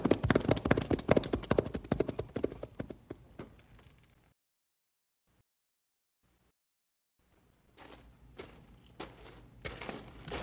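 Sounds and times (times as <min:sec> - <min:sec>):
horses' hooves clip-clopping as they ride off: 0:00.0 - 0:04.0, 0:07.8 - 0:10.4.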